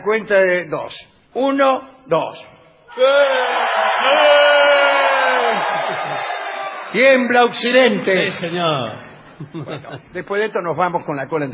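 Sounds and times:
speech: 0.0s - 4.6s, 6.9s - 11.5s
concert audience shouting a rebellious collective yell: 2.9s - 7.0s
laughter: 5.1s - 6.9s, 8.0s - 10.2s.

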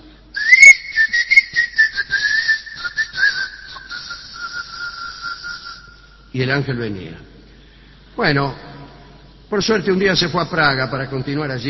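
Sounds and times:
person whistling a sustained wavering tune: 0.4s - 6.2s
speech: 6.4s - 7.3s, 8.2s - 8.7s, 9.5s - 11.6s.

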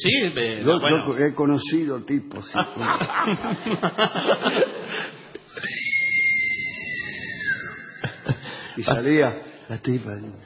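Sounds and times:
speech: 0.0s - 5.9s, 8.8s - 10.4s
lively talk: 0.0s - 10.4s
people chuckling: 2.4s - 5.7s, 7.6s - 8.8s
person imitating a long loud whistle used to call someone from outside: 5.5s - 8.1s.

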